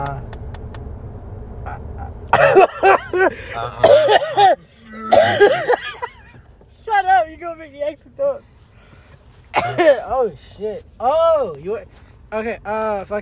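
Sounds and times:
low engine rumble: 0.0s - 13.1s
hacking coughs: 1.7s - 6.4s, 9.5s - 10.1s
speech: 3.2s - 4.6s, 7.4s - 8.5s, 9.7s - 13.1s
throat clearing: 3.4s - 5.9s, 9.6s - 10.1s.

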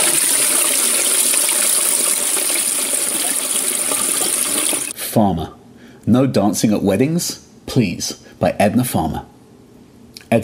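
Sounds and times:
toilet flushing: 0.0s - 5.0s
speech: 5.2s - 9.3s.

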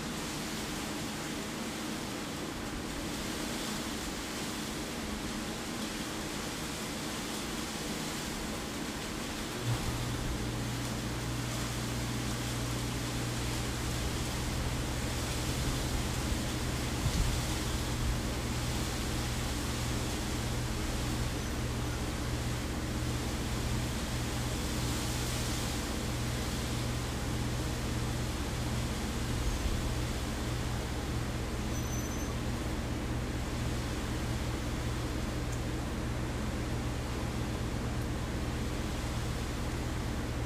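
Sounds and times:
rushing rain and water noise: 0.0s - 40.4s
low droning hum: 9.5s - 40.4s.

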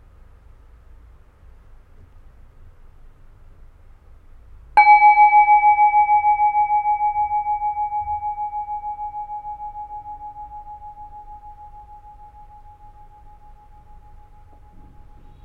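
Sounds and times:
meditation bowl bell ringing: 4.8s - 15.4s.

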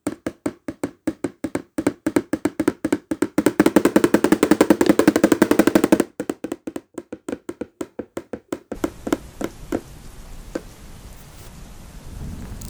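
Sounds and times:
spoon tapping on a plastic container imitating rain: 0.0s - 9.9s.

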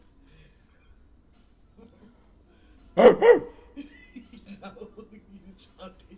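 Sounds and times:
dog barking: 3.0s - 3.6s.

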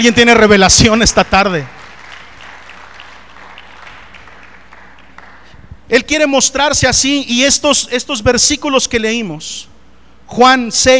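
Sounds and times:
speech: 0.0s - 1.8s, 5.9s - 9.7s, 10.3s - 10.9s
large group clapping: 0.8s - 5.7s.

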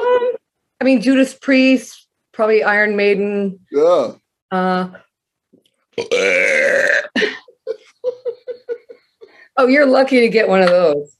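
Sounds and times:
speech: 0.8s - 5.0s, 6.0s - 7.4s, 9.6s - 11.1s
loud drawn-out burp: 6.0s - 7.2s
laughter: 7.2s - 9.3s.

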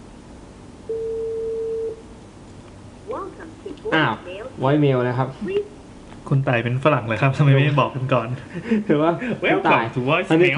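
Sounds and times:
telephone ringback tone on an unanswered call: 0.9s - 2.0s
speech: 3.4s - 10.5s.

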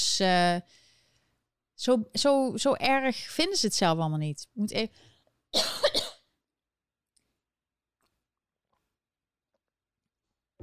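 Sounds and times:
speech: 0.0s - 0.8s, 1.8s - 5.8s
person coughing: 5.6s - 6.3s.

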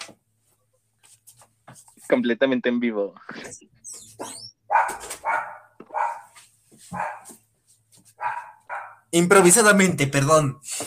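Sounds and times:
speech: 2.1s - 5.0s, 9.1s - 10.8s
dog yipping and whining: 3.8s - 6.3s, 8.2s - 9.0s
dog barking: 4.2s - 7.4s, 8.2s - 9.1s.

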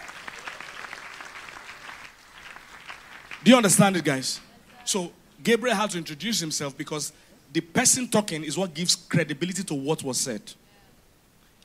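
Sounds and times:
crowd applauding: 0.0s - 4.4s
speech: 3.4s - 10.6s.

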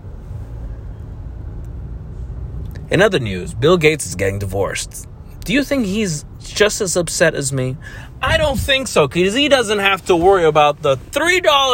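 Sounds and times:
car engines and road noise from bumper-to-bumper highway traffic on a paid express lane: 0.0s - 11.7s
speech: 2.9s - 11.7s.

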